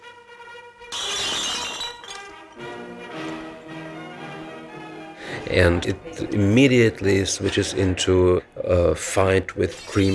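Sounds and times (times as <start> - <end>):
glass shattering on a table: 0.9 - 2.8
speech: 5.5 - 10.1.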